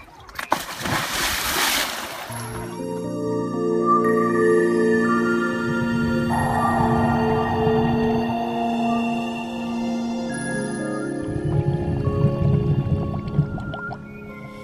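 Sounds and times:
diver sliding backward into water with rushing splash: 0:00.4 - 0:02.4
steady layered droning tone: 0:02.3 - 0:14.6.

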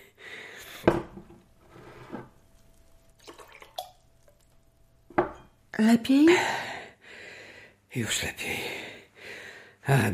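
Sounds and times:
glass clinking: 0:02.1 - 0:05.6
water poured into a glass: 0:03.0 - 0:04.5
speech: 0:05.8 - 0:06.6, 0:07.9 - 0:08.8, 0:09.8 - 0:10.1.

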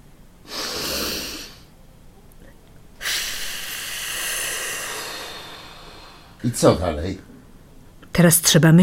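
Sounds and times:
person exhaling during a breathing exercise lying down: 0:00.5 - 0:01.7, 0:03.0 - 0:06.4
person inhaling during a breathing exercise lying down: 0:00.5 - 0:01.7, 0:03.0 - 0:06.4
speech: 0:06.4 - 0:07.3, 0:08.2 - 0:08.8.

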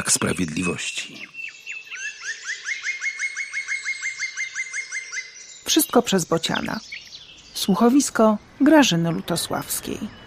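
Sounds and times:
speech: 0:00.0 - 0:01.4, 0:05.7 - 0:07.0, 0:07.6 - 0:10.2
bird chirps as the birds fly off: 0:00.0 - 0:10.2.

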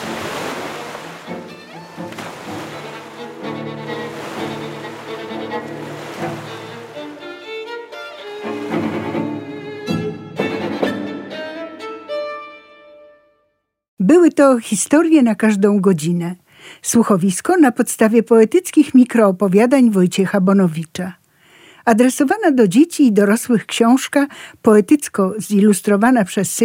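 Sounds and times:
sea waves breaking on the shore: 0:00.0 - 0:08.9
sustained tonal music: 0:00.0 - 0:13.4
speech: 0:14.4 - 0:21.2, 0:21.8 - 0:26.6.

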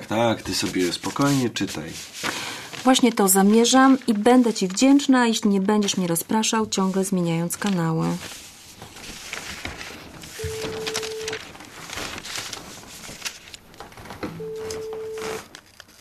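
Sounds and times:
busy hissy background: 0:00.0 - 0:15.6
speech: 0:00.1 - 0:08.4
mobile phone call ringback tones: 0:10.4 - 0:11.4, 0:14.4 - 0:15.5.

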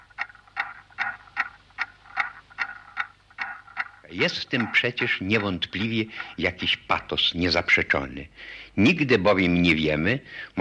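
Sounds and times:
clock ticking: 0:00.0 - 0:08.1
speech: 0:04.1 - 0:10.6.

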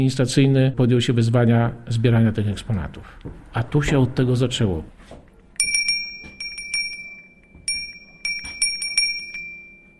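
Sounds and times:
speech: 0:00.0 - 0:05.2
original small sleigh bell ringing: 0:05.6 - 0:09.9.

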